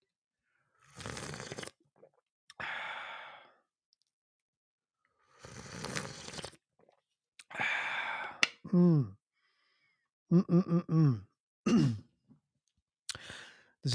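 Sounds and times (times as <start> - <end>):
slurping sips of hot coffee: 0.7 - 2.2, 5.2 - 7.0
person giving short satisfied sighs and hums: 7.5 - 9.2, 10.3 - 12.0
speech: 8.7 - 9.2, 10.3 - 12.0.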